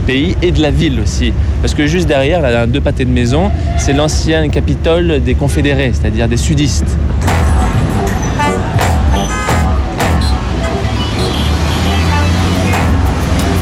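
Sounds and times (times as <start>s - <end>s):
loud steady street traffic in Richmond: 0.0s - 13.6s
speech: 0.1s - 7.4s
car horns honking in street traffic: 3.5s - 4.6s, 5.3s - 6.0s, 7.2s - 13.6s
indistinct voices: 6.8s - 13.6s.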